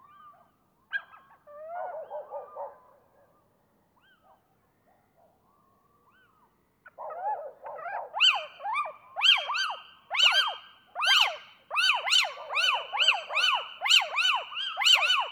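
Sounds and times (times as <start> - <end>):
pair of little owls giving various loud calls: 9.2 - 15.3.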